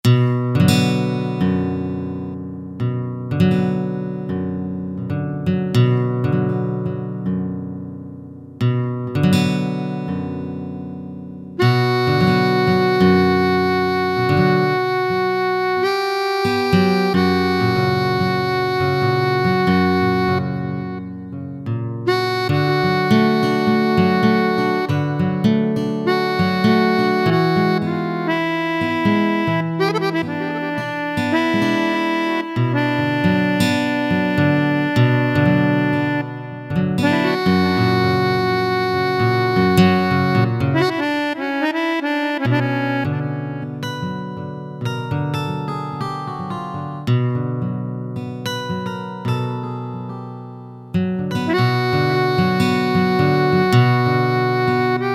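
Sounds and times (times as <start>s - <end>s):
acoustic guitar from Roland SC-880 factory patch: 0.0s - 55.1s
harmonica from Roland SC-880 factory patch: 0.2s - 2.4s, 11.6s - 47.0s, 51.3s - 55.1s.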